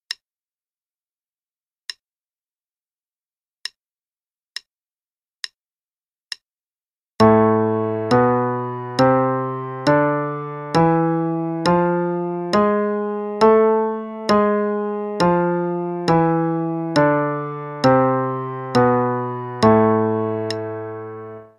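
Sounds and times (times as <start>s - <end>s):
A harmonic minor scale: 7.2s - 21.5s.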